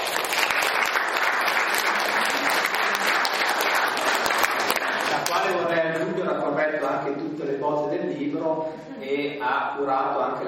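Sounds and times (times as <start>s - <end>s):
audience applause at a book presentation: 0.0s - 5.6s
speech: 6.3s - 10.4s.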